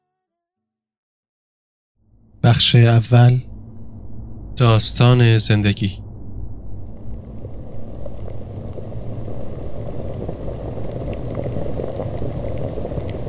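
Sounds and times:
speech: 0:02.4 - 0:03.5, 0:04.6 - 0:06.0
soup boiling and bubbling in a pot: 0:07.5 - 0:13.2.

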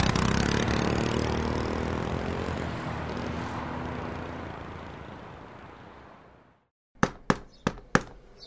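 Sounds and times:
rumbling engine drone: 0:00.0 - 0:05.6
knocking on a door: 0:07.0 - 0:08.2.

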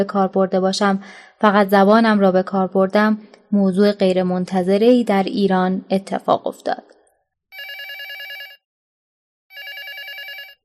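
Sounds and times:
speech: 0:00.0 - 0:07.0
telephone ringing with a trilling electronic ring: 0:07.6 - 0:08.7, 0:09.5 - 0:10.6.

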